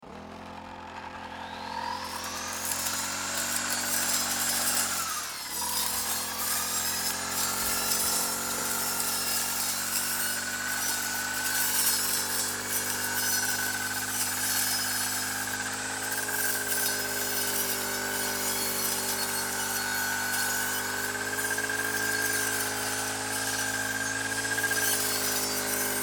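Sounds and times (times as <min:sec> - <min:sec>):
grass cutter: 0:00.0 - 0:26.0.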